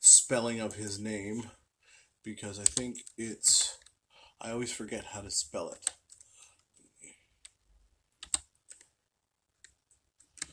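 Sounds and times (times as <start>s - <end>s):
speech: 0.3s - 1.6s, 2.2s - 3.6s, 4.4s - 6.0s
computer keyboard typing: 2.6s - 3.2s, 7.4s - 8.9s, 9.6s - 10.5s.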